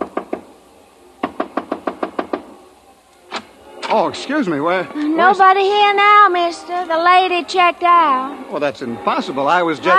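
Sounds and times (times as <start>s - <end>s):
sharp knocks on a wooden hotel room door: 0.0s - 0.5s, 1.2s - 2.5s
speech: 3.9s - 9.9s.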